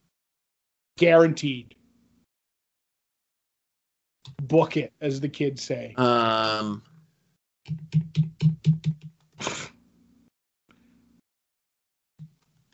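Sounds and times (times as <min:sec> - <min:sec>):
speech: 0:01.0 - 0:01.8, 0:04.2 - 0:06.9, 0:07.7 - 0:09.7
computer keyboard clacks: 0:07.7 - 0:09.1.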